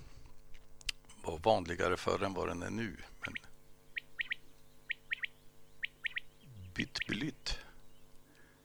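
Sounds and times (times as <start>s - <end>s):
faint low hum: 0.0s - 8.6s
speech: 1.3s - 3.5s, 6.9s - 7.6s
common quail calling its three-note phrase: 2.8s - 8.4s.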